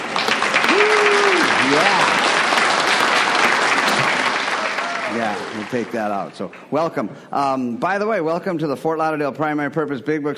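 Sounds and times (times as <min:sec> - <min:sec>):
crowd applauding: 0:00.0 - 0:06.7
person cheering or calling: 0:00.6 - 0:02.2, 0:04.6 - 0:05.4
speech: 0:05.6 - 0:10.3.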